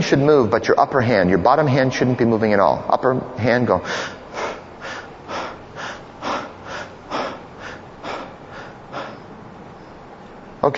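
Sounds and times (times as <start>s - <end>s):
speech: 0.1s - 4.2s
group of people breathing shallow rapid upper-chest breaths: 3.8s - 10.4s.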